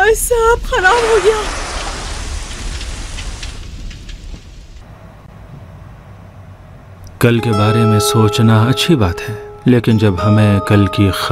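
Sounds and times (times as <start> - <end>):
steady rain pouring: 0.0 - 4.8
speech: 0.1 - 1.6, 7.2 - 11.2
drips and patters landing on a surface: 0.9 - 4.6.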